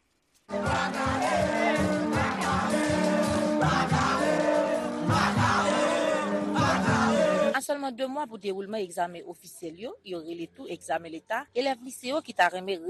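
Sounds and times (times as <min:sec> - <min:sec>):
high school students shouting and chanting in a street protest: 0:00.6 - 0:07.6
speech: 0:07.8 - 0:12.8.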